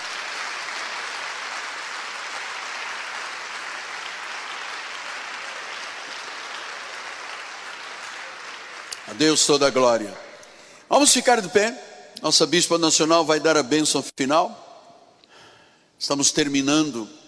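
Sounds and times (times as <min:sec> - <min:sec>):
large crowd applauding: 0:00.0 - 0:09.4
speech: 0:09.1 - 0:10.3, 0:10.9 - 0:14.6, 0:16.0 - 0:17.2.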